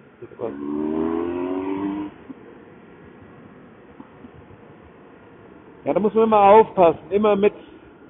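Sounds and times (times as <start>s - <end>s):
faint road noise: 0.0s - 8.0s
speech: 0.2s - 1.2s, 5.8s - 7.7s
motorcycle engine revving and accelerating while overtaking a car: 0.3s - 2.5s.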